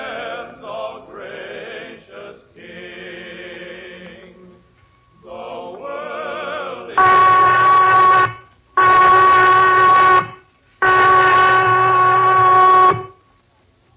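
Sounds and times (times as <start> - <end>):
loud shrill prison whistle blasts: 7.0 - 13.3.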